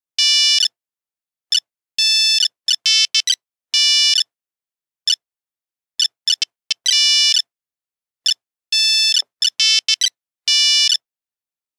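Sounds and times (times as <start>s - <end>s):
Nokia phone buzzer funfair tune: 0.2s - 0.7s, 2.0s - 4.2s, 6.3s - 7.4s, 8.8s - 11.0s.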